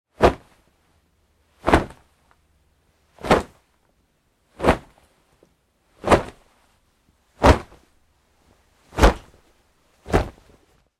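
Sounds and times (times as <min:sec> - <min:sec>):
hard fight moves in jeans: 0:00.2 - 0:00.8, 0:01.5 - 0:02.4, 0:03.1 - 0:03.7, 0:04.5 - 0:10.9.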